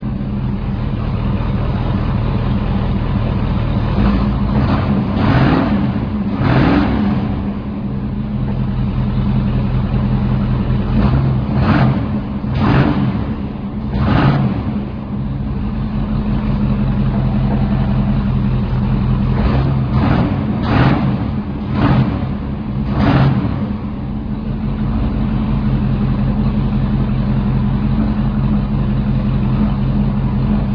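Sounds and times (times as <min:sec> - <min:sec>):
sedan: 0:00.0 - 0:30.7.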